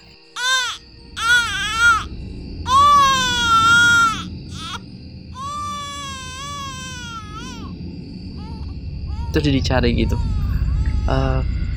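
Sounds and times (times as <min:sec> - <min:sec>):
baby crying: 0:00.4 - 0:02.1, 0:02.7 - 0:04.8, 0:05.4 - 0:07.7, 0:08.4 - 0:11.4
steady low rumble: 0:00.8 - 0:11.7
speech: 0:09.4 - 0:10.4, 0:11.1 - 0:11.6.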